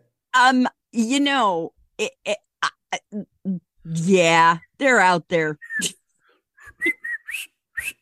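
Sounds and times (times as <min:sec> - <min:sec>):
speech: 0:00.4 - 0:06.0
person whistling a tune: 0:06.6 - 0:08.0.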